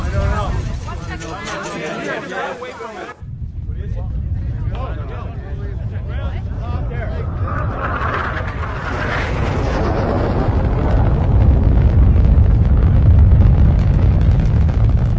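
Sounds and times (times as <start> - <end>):
voices in a TV drama scene: 0.0 - 10.0
deep rumbling roar of missiles launching in a TV drama scene: 4.9 - 15.1.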